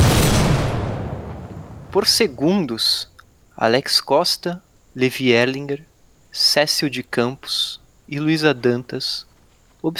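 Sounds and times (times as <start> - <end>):
gunshot: 0.0 - 2.4
speech: 2.0 - 9.9.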